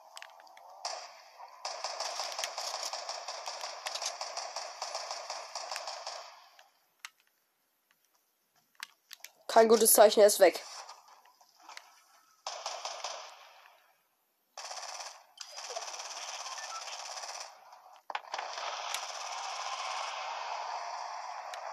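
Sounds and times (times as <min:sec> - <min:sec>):
video game gunfire: 0:00.7 - 0:06.6, 0:12.4 - 0:13.8, 0:14.6 - 0:21.7
speech: 0:09.6 - 0:10.7.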